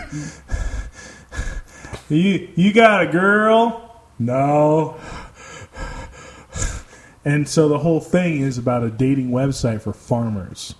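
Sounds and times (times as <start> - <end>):
person imitating heavy raspy open-mouthed breathing: 0.0 - 2.1, 4.9 - 7.2
speech: 0.1 - 0.5, 2.1 - 5.0, 7.2 - 10.7.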